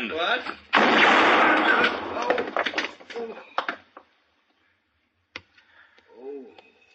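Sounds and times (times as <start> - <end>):
gunshot hitting a gun: 0.7 - 2.8
burst of noise and clatter: 0.7 - 3.2.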